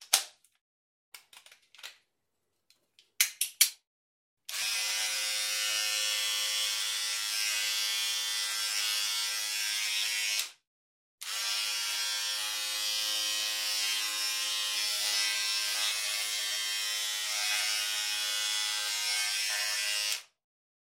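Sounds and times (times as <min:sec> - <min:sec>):
hair clipper buzzing: 0:04.5 - 0:10.6, 0:11.2 - 0:20.3.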